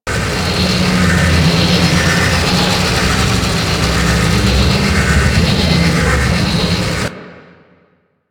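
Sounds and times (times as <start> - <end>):
prison tower ambience: 0.0 - 7.6.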